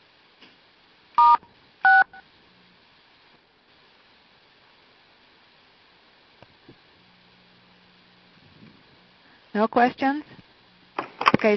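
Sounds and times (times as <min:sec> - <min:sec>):
telephone keypad tones pressing star and six to mute a call: 0:01.2 - 0:02.2
speech: 0:09.6 - 0:10.4.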